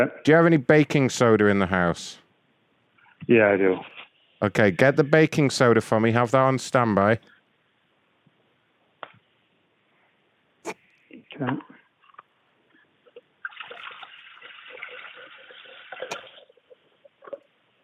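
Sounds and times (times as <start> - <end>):
speech: 0.0 - 2.2, 3.2 - 7.3, 10.6 - 11.7
vinegar being poured into a container to clean it: 13.4 - 17.5.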